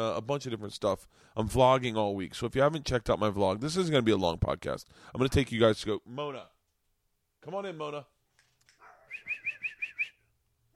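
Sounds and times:
speech: 0.0 - 6.5, 7.4 - 8.1
dog yelping: 8.8 - 9.9.

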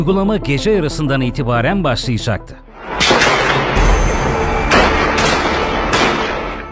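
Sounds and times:
speech: 0.0 - 3.4
explosions: 2.8 - 6.6
gunfire: 2.9 - 6.6.

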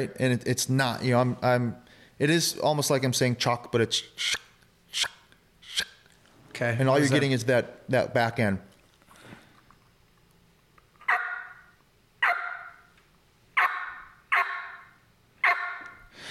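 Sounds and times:
speech: 0.0 - 5.2, 6.6 - 8.7
turkey calling aggressively like a yelp: 11.0 - 12.9, 13.6 - 16.1.

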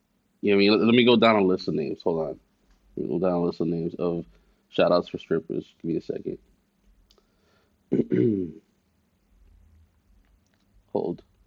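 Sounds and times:
speech: 0.4 - 2.4, 3.0 - 6.5, 7.9 - 8.6, 11.0 - 11.3
person coughing: 7.9 - 8.6.

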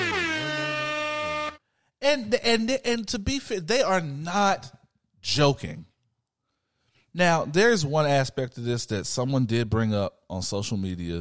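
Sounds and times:
brassy air horn sound effect blast: 0.0 - 1.7
speech: 2.0 - 5.9, 7.1 - 11.1.

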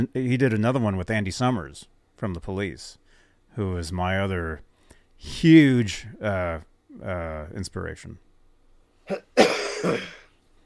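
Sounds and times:
speech: 0.0 - 8.2, 9.1 - 10.2
raspy throat clearing: 9.1 - 10.3
person hacking cough: 9.1 - 10.4.

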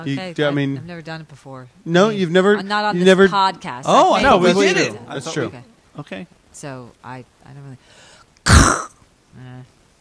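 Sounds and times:
speech: 0.0 - 8.8, 9.4 - 9.8
throat clearing: 8.5 - 9.0.

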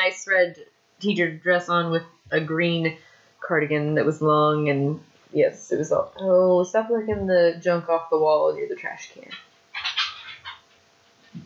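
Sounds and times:
speech: 0.1 - 9.5
pet bird calling in short raspy squawks: 9.3 - 10.7.

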